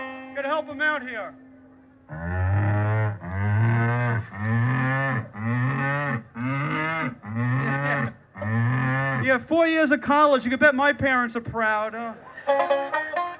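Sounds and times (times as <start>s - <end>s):
speech: 0.4s - 1.4s, 9.4s - 13.0s
cow mooing: 2.1s - 9.3s.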